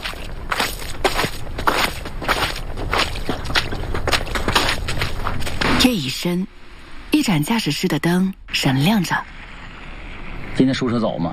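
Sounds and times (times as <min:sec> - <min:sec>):
footsteps tramping along a muddy, snow-covered road on a snowy night: 0:00.0 - 0:06.2
speech: 0:05.8 - 0:09.4, 0:10.6 - 0:11.3.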